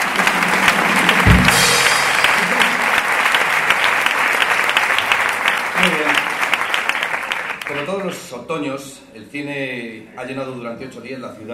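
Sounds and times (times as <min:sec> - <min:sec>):
audience applauding an orchestra at a film festival closing gala: 0:00.0 - 0:08.2
speech: 0:08.3 - 0:11.5.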